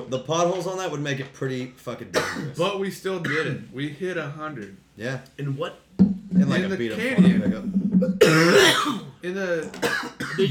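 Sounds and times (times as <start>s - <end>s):
speech: 0.1s - 10.4s
harsh raspy cough: 2.1s - 2.6s, 3.2s - 3.6s, 8.2s - 9.2s, 9.8s - 10.4s
low murmur: 6.0s - 8.9s
gravelly throat clearing: 8.2s - 9.1s, 9.8s - 10.4s.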